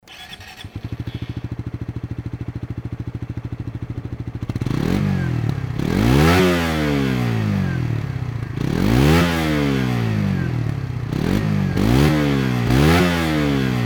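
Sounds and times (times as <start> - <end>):
Suzuki GSX-S125 motorcycle engine running normally: 0.0 - 13.8.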